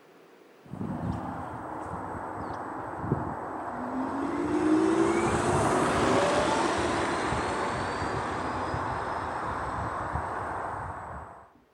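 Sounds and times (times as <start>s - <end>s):
electric car synthetic drive sound with whirring hum and tonal whine: 0.8s - 11.4s.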